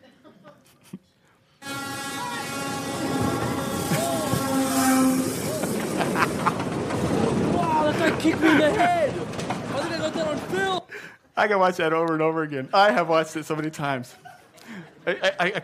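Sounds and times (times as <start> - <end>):
laughter: 0.0 - 1.1, 3.2 - 10.8, 14.0 - 15.6
train horn blaring: 1.6 - 6.3
train roaring past: 1.6 - 10.9
train wheels rattling: 2.8 - 10.9
speech: 8.2 - 9.0, 11.4 - 14.3, 15.1 - 15.6.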